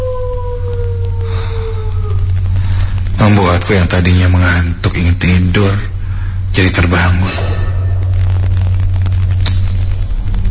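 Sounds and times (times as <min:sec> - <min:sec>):
dog howling: 0:00.0 - 0:02.5
strong steady low hum: 0:00.0 - 0:10.4
speech: 0:03.3 - 0:05.9, 0:06.6 - 0:07.6.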